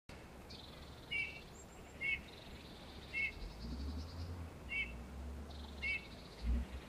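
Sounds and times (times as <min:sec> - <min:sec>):
low background rumble: 0:00.2 - 0:06.8
Eurasian Bullfinch Pyrrhula pyrrhula piping calls: 0:00.5 - 0:06.8.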